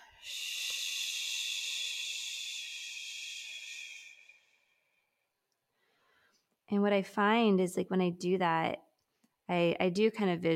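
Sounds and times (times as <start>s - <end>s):
long exhaled shushing breath: 0.0s - 5.2s
speech: 6.7s - 8.9s, 9.5s - 10.5s.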